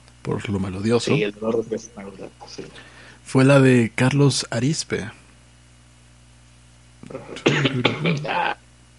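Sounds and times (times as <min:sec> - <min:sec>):
speech: 0:00.2 - 0:05.2, 0:07.1 - 0:08.6
man recovering from illness coughing: 0:07.0 - 0:08.6.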